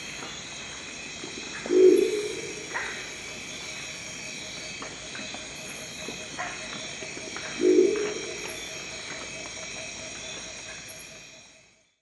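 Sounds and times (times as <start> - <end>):
steady high hiss: 0.0 - 11.6
crested owl giving short low growling notes: 1.7 - 2.8, 7.6 - 8.5.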